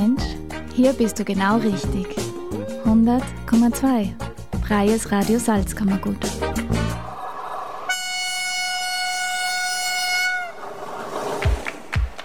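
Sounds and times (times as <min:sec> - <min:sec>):
speech: 0:00.8 - 0:02.2, 0:02.8 - 0:06.8
rumbling rail noise: 0:06.8 - 0:12.2
express train horn blast: 0:07.9 - 0:10.6.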